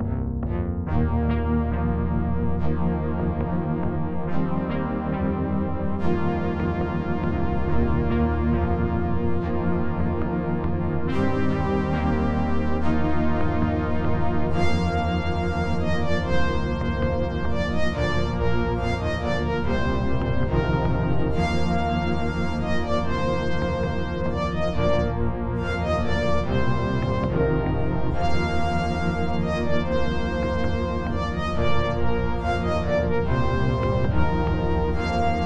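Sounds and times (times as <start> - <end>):
orchestral game music on a 16-bit console sound chip: 0.1 - 35.4.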